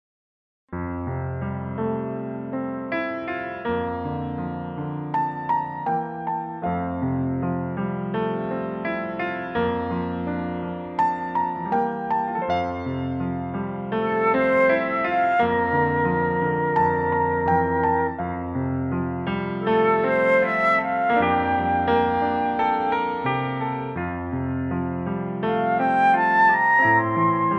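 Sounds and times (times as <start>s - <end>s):
piano: 0.7s - 27.5s
flute: 14.0s - 18.3s, 19.7s - 23.7s, 25.6s - 27.5s.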